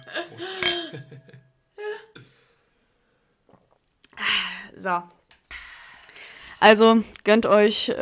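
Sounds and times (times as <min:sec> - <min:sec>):
speech: 0:00.1 - 0:01.5, 0:04.2 - 0:05.2, 0:06.6 - 0:08.0
beer and wine glasses clinking in a toast: 0:00.4 - 0:01.2
quiet glass handling noise: 0:00.5 - 0:01.1.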